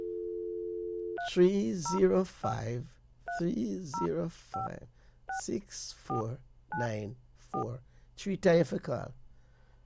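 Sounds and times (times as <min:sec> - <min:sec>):
steady telephone dial tone: 0:00.0 - 0:01.2
two-tone touch-tone beeps of a telephone keypad: 0:01.2 - 0:02.1, 0:04.0 - 0:04.7
person talking: 0:01.2 - 0:09.2.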